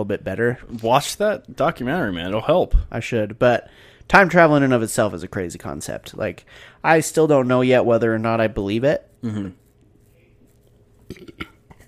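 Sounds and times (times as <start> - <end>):
speech: 0.0 - 9.6, 11.1 - 11.5
gulping hiccup with a retch-like gagging edge: 11.0 - 11.8.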